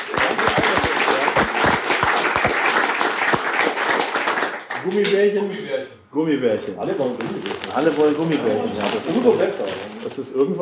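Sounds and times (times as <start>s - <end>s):
crowd applauding: 0.0s - 5.3s
speech: 4.8s - 10.5s.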